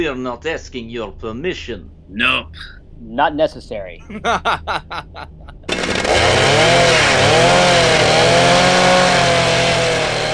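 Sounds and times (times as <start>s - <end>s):
speech: 0.0s - 7.7s
laughter: 4.1s - 5.7s
motorized bone saw buzzing: 5.7s - 10.3s.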